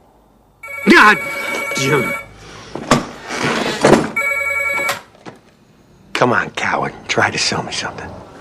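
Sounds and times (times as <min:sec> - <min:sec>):
home telephone ringing with a short bright electronic trill: 0:00.6 - 0:02.3, 0:04.2 - 0:05.1
speech: 0:00.8 - 0:02.2, 0:06.2 - 0:08.2.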